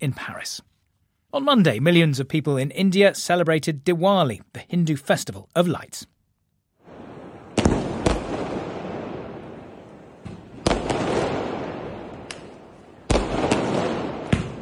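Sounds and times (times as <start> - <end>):
speech: 0.0 - 0.7, 1.3 - 6.1
fireworks bursting with bangs and crackling pops: 6.8 - 14.6.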